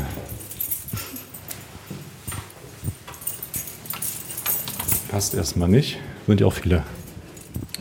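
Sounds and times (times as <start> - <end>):
bunch of keys jingling and clinking: 0.0 - 5.7, 6.8 - 7.7
speech: 5.2 - 7.0.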